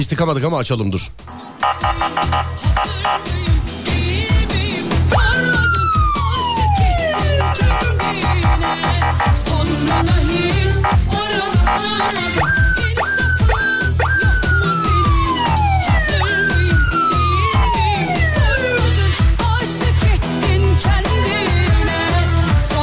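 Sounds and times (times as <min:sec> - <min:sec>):
speech: 0:00.0 - 0:03.6
thumping rhythmic beat: 0:01.2 - 0:22.7
police siren wailing: 0:01.6 - 0:03.4, 0:05.1 - 0:19.2.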